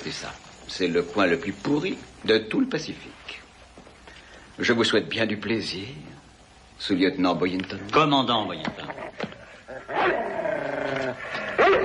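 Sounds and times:
speech: 0.0 - 3.4, 4.6 - 6.1, 6.8 - 9.0
dog growling and whining: 8.9 - 11.8.

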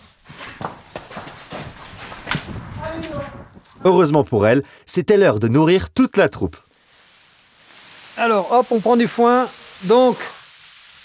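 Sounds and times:
donkey hooves clip-clopping as it is pushed into a stable: 0.0 - 3.9
speech: 3.0 - 6.6, 8.2 - 10.3.

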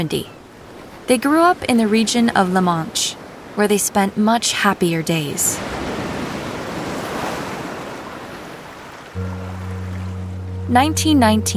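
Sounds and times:
speech: 0.0 - 0.4, 1.1 - 5.9, 10.7 - 11.5
sea surf roaring at a cliff in Granville: 5.6 - 11.5
low sustained musical tones: 9.2 - 11.5.

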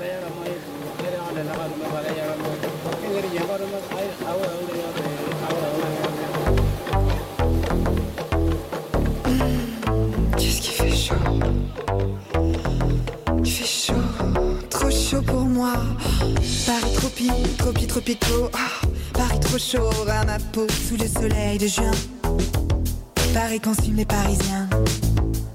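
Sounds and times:
punchy drums and bass: 0.0 - 25.5
speech: 1.4 - 5.6, 16.7 - 22.6, 23.4 - 25.0
pop song by a band with vocals on the radio: 9.2 - 11.7, 12.3 - 25.5.

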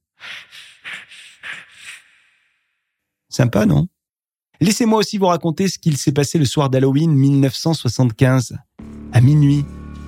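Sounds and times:
close airy hissing breathing by the ear: 0.0 - 2.6
speech: 3.4 - 3.9, 4.6 - 9.8.

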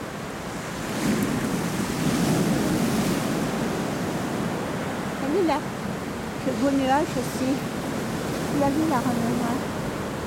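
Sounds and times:
gusting wind: 0.0 - 10.2
sea waves: 0.0 - 10.2
speech: 5.4 - 5.8, 6.5 - 7.7, 8.5 - 9.5.

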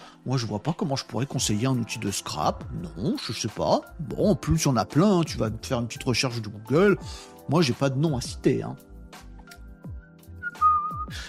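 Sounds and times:
speech: 0.2 - 8.9
person whistling a short melody: 10.3 - 11.2.

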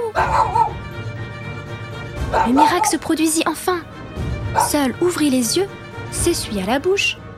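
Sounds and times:
small dog barking loudly: 0.1 - 0.8, 2.3 - 3.1, 4.5 - 4.8
speech: 2.5 - 3.9, 4.5 - 7.2.

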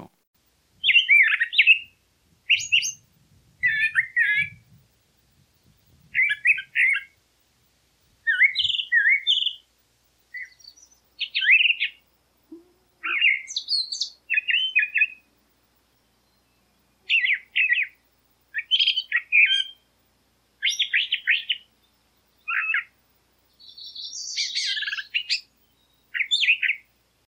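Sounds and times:
mockingbird singing varied phrases of chirps, whistles and trills: 0.8 - 3.0, 3.6 - 4.7, 6.0 - 7.2, 8.2 - 9.7, 10.3 - 15.3, 16.0 - 19.9, 20.6 - 26.9.

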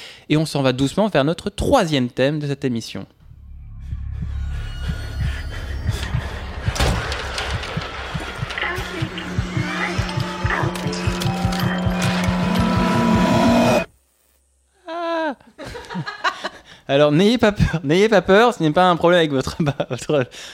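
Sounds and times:
speech: 0.3 - 3.2, 16.9 - 20.5
pulsing mechanical textures: 3.2 - 13.9
steady low drone: 3.2 - 13.9
strange dense electronic logo intro music sting: 3.2 - 13.9
whooshing noise: 3.2 - 13.9
laughter: 15.5 - 16.6.

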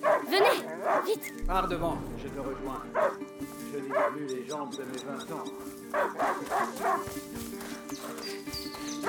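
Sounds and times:
hunting dog barking: 0.0 - 1.2, 2.8 - 3.2, 3.9 - 4.2, 5.9 - 7.2
speech: 1.1 - 9.0.

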